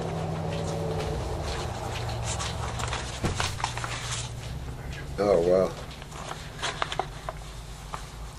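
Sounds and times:
truck engine rumble outside: 0:00.0 - 0:05.8
speech: 0:05.2 - 0:05.8.

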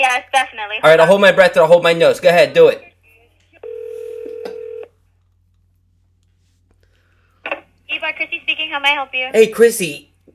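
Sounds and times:
speech: 0:00.2 - 0:02.9, 0:08.0 - 0:10.1
steady telephone tone: 0:03.6 - 0:05.0.

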